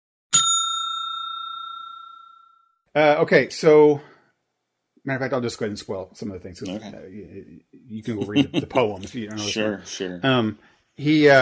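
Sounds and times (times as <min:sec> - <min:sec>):
single bright bell ding rung as a spoiler warning: 0:00.3 - 0:02.8
speech: 0:02.9 - 0:04.1, 0:05.0 - 0:11.4
laughter: 0:08.0 - 0:09.9.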